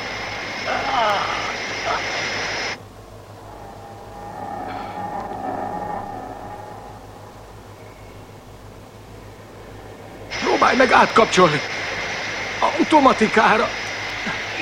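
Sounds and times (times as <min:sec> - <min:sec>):
quieter droning hum: 0:00.0 - 0:14.6
loud steady engine roar with a hissing edge: 0:02.8 - 0:10.4
speech: 0:10.7 - 0:11.7, 0:12.8 - 0:13.8.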